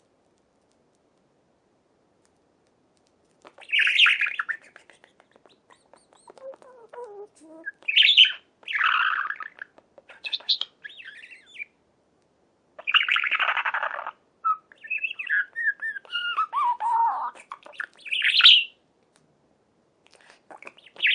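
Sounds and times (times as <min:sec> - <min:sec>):
budgerigar chattering: 0:03.6 - 0:11.7, 0:12.8 - 0:18.7, 0:20.6 - 0:21.1.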